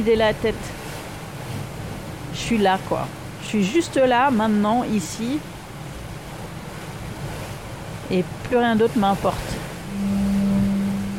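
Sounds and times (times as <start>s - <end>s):
speech: 0.0s - 0.8s, 2.4s - 5.6s, 8.1s - 9.5s
rush of water as a sailboat moves through waves: 0.0s - 11.1s
wind: 0.0s - 11.1s
low rumble: 9.9s - 11.1s.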